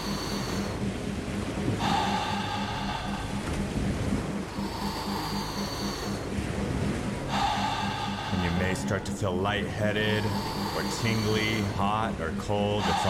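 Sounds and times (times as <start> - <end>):
deep forceful rhythmic breathing: 0.0 - 13.0
low droning background: 0.0 - 13.0
speech: 8.9 - 13.0.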